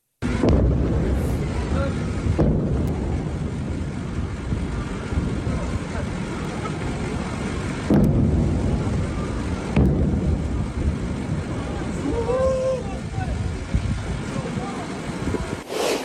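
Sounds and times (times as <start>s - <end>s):
sharp booming explosion blasts: 0.2s - 12.0s
faint voices: 0.2s - 15.6s.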